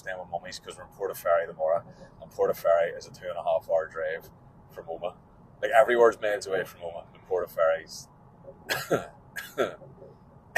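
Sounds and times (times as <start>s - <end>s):
speech: 0.0s - 10.0s
man with a lingering cough coughing: 8.7s - 9.8s.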